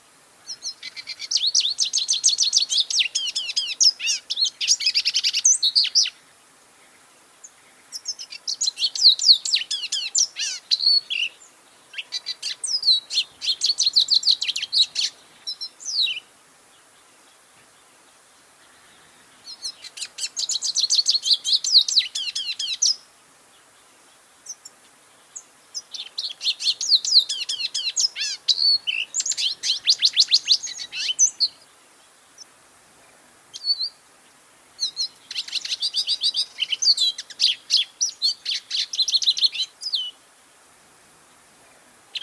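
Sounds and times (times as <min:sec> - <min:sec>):
lesser goldfinch singing: 0:00.5 - 0:06.2, 0:07.4 - 0:16.3, 0:18.6 - 0:23.0, 0:25.4 - 0:31.7, 0:34.8 - 0:40.2.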